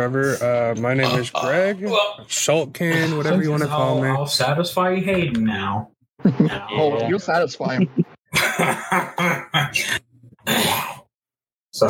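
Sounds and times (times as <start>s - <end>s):
speech: 0.0s - 8.0s, 8.6s - 11.0s
laughter: 6.2s - 9.4s
rough throat-clearing bursts: 8.5s - 11.1s
brief low grunt: 9.2s - 11.1s.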